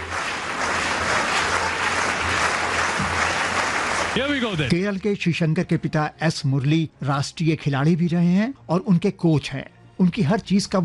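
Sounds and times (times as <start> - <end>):
crowd clapping in rhythm at an athletics long jump: 0.0 - 4.9
speech: 4.2 - 10.8.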